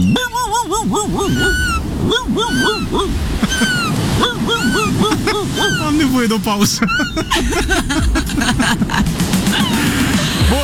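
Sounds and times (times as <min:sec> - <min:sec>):
gulls crying: 0:00.0 - 0:10.6
laughter: 0:00.0 - 0:10.6
speech: 0:00.0 - 0:10.6
steady roar of ocean surf: 0:00.0 - 0:10.6.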